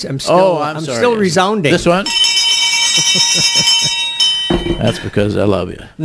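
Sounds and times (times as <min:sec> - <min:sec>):
speech: 0:00.0 - 0:02.4, 0:03.0 - 0:04.0, 0:04.6 - 0:06.0
bright untuned bell ringing with clashing overtones: 0:02.1 - 0:05.4
laughter: 0:02.6 - 0:05.2.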